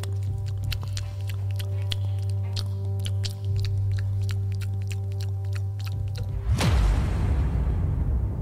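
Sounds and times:
chewing food: 0.0s - 6.5s
constant low hum: 0.0s - 8.4s.

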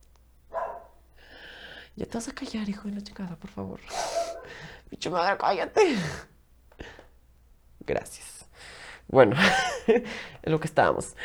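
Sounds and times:
dog barking: 0.5s - 1.1s, 3.9s - 4.7s
speech: 2.0s - 4.2s, 4.9s - 6.3s, 7.9s - 8.3s, 9.1s - 11.2s
laughter: 9.2s - 10.4s.

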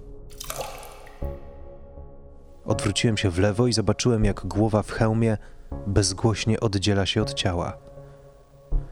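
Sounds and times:
thick drops of blood dripping: 0.2s - 1.5s
heavier low plop of blood: 0.3s - 1.5s
speech: 2.7s - 7.9s.

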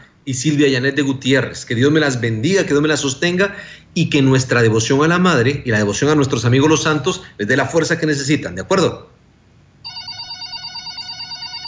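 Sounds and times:
speech: 0.2s - 9.1s
telephone ringing with an incoming call: 9.8s - 11.6s.

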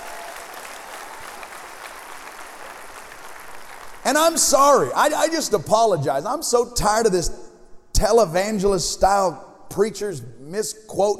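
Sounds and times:
audience clapping hands: 0.0s - 5.0s
speech: 4.1s - 11.1s.

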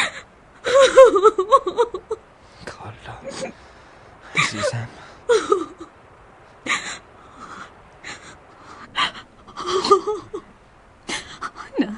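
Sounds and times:
woman crying and sobbing with gasping breaths and whimpering wails: 0.0s - 2.3s, 4.4s - 6.0s, 6.6s - 11.9s.

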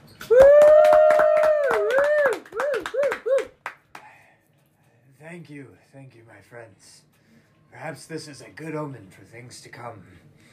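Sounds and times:
bar crowd rhythmic clapping: 0.2s - 4.1s
loud drawn-out whooping holler: 0.3s - 3.5s
speech: 5.4s - 7.1s, 7.7s - 10.4s.

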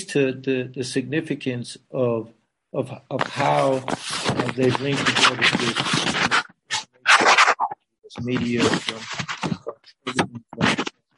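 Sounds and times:
speech: 0.1s - 6.4s, 8.2s - 9.3s
paper rustling and crinkling: 3.2s - 10.9s.

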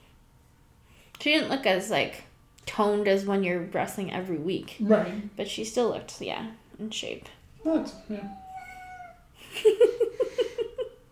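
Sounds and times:
speech: 1.2s - 8.4s, 9.5s - 10.0s
cat meowing: 8.1s - 9.3s.

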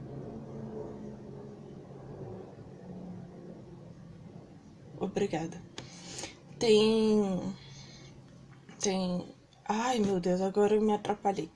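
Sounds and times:
airplane passing overhead: 0.0s - 6.6s
speech: 5.0s - 5.8s, 6.6s - 7.6s, 8.8s - 11.5s.

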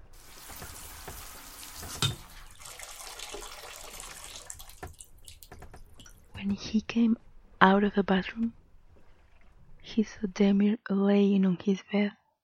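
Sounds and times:
water spraying steadily from a shower: 0.1s - 5.7s
speech: 6.4s - 8.6s, 10.0s - 12.2s.

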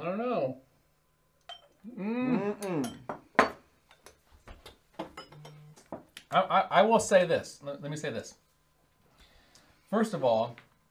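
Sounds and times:
glasses clinking in a toast: 1.5s - 1.8s, 2.6s - 3.6s, 5.2s - 5.8s
taps and clinks of glassware being handled: 1.5s - 1.8s, 2.8s - 4.2s, 5.0s - 6.1s
person calling out: 1.9s - 3.0s
speech: 6.3s - 8.4s, 9.9s - 10.7s.

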